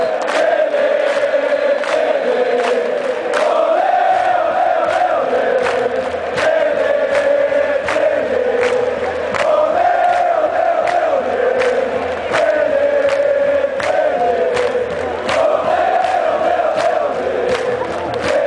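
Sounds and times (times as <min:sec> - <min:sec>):
huge stadium crowd cheering and chanting: 0:00.0 - 0:18.4.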